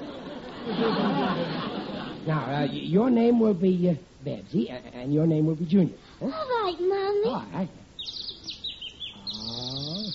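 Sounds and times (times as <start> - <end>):
laughter: 0.0 - 2.9
speech: 2.3 - 8.2
bird chirping and trilling: 8.0 - 10.1
lower drawn-out warbling bird call: 8.0 - 10.1.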